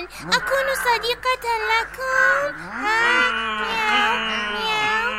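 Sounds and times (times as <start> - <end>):
speech: 0.1 - 4.2
white-furred cat meowing: 2.7 - 5.1.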